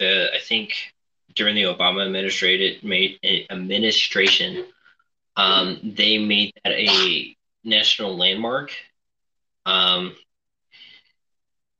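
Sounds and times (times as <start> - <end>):
speech: 0.0 - 4.8, 5.4 - 8.9, 9.6 - 10.2
cat coughing up a hairball: 6.9 - 7.2.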